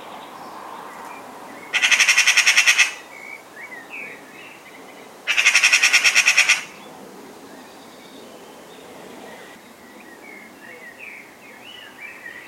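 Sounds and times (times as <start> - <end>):
Eurasian magpie Pica pica chattering: 1.8 - 3.0, 5.3 - 6.8.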